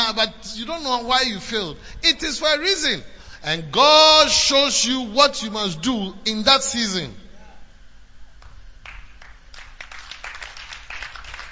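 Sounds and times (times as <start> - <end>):
speech: 0.2 - 7.2
crowd clapping: 8.4 - 11.5.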